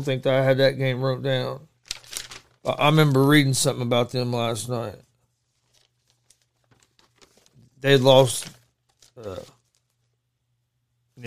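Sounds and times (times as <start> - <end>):
speech: 0.0 - 1.7, 2.6 - 5.1, 7.8 - 8.6, 9.2 - 9.6
sheet of paper rustling as it is handled: 1.8 - 3.3, 5.0 - 10.2.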